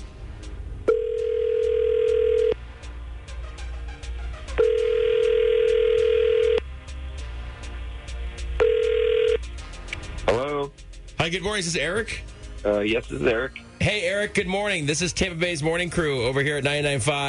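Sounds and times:
long steady phone ringback tones: 0.9s - 2.5s, 4.6s - 6.6s, 8.6s - 9.4s
speech: 11.3s - 17.2s.

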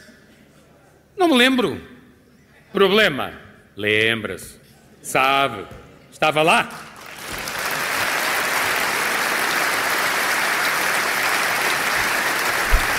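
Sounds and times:
speech: 1.2s - 1.9s, 2.7s - 6.9s
large crowd applauding a political speech: 7.0s - 12.9s.

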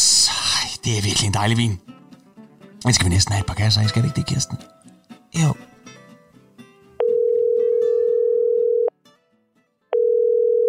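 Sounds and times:
music: 0.0s - 10.4s
speech: 0.8s - 1.9s, 2.8s - 4.8s, 5.4s - 5.7s
loud steady telephone ringing tone: 7.0s - 8.9s, 10.0s - 10.6s.

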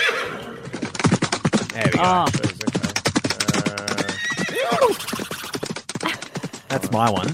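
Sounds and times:
horse neighing: 0.0s - 0.7s, 3.3s - 6.2s
horse hooves clip-clopping: 0.1s - 7.3s
speech: 1.8s - 2.4s, 6.7s - 7.3s.

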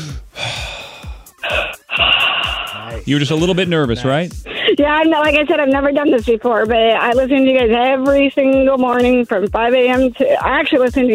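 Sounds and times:
nervous person breathing deeply: 0.0s - 3.0s
speech: 3.0s - 11.1s.

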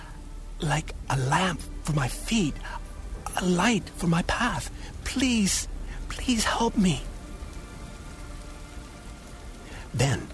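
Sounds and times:
steady rain pattering on a surface: 0.0s - 10.3s
speech: 0.6s - 2.8s, 3.4s - 7.1s, 10.0s - 10.3s.

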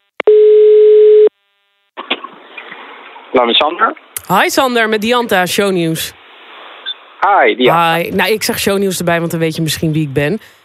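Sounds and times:
telephone ringing tone of an outgoing call: 0.3s - 1.3s
speech: 3.4s - 6.2s, 7.2s - 10.6s.

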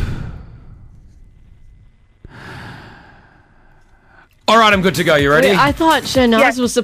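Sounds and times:
deep breath in through nose and out through mouth: 0.0s - 4.4s
speech: 4.5s - 6.8s.

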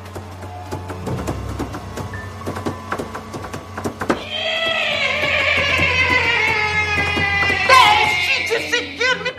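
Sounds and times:
rhythmic knocking and clattering: 0.0s - 8.3s
horse neighing: 4.2s - 9.2s.

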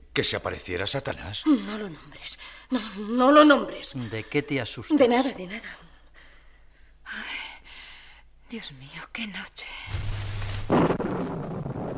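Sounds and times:
speech: 0.2s - 5.9s, 8.5s - 10.0s
thunder crack: 9.9s - 11.9s.

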